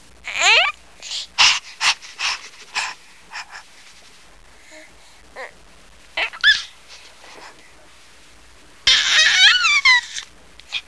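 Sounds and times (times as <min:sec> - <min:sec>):
baby cooing: 0:00.2 - 0:00.8, 0:05.4 - 0:05.6, 0:06.2 - 0:06.8, 0:08.9 - 0:10.8.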